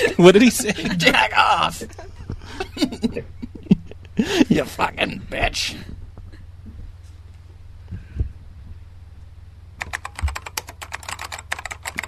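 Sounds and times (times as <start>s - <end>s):
laughter: 0.0s - 4.6s
low steady hum: 0.0s - 12.0s
speech: 0.2s - 2.1s, 4.2s - 5.9s
typing on a computer keyboard: 9.8s - 12.0s.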